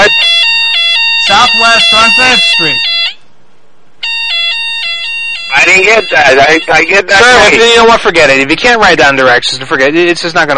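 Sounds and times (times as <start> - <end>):
fire alarm blaring: 0.0 - 3.2, 4.0 - 7.6
speech: 1.4 - 2.9, 5.5 - 10.5.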